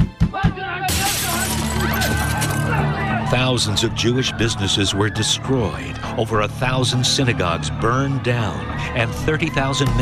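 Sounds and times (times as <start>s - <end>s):
glass shattering: 0.9s - 2.8s
speech: 3.3s - 10.0s.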